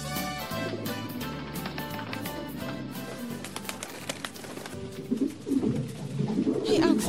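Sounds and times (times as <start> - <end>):
dove cooing: 0.2 - 6.9.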